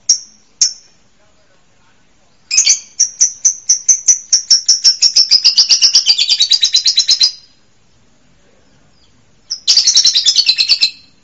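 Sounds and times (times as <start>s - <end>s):
bird song of fast high clipped chirps and a rattling trill: 0.0s - 1.0s, 2.5s - 7.7s, 8.7s - 11.2s.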